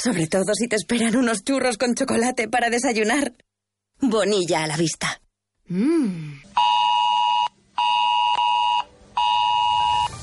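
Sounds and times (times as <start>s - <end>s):
speech: 0.0s - 6.6s
ES-Alert emergency alert phone tone: 6.6s - 10.1s.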